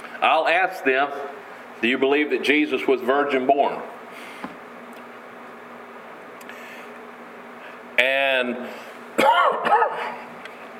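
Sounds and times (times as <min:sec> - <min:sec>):
faint hum of room noise: 0:00.0 - 0:10.7
speech: 0:00.2 - 0:04.0, 0:08.4 - 0:10.2
person coughing: 0:09.2 - 0:10.3.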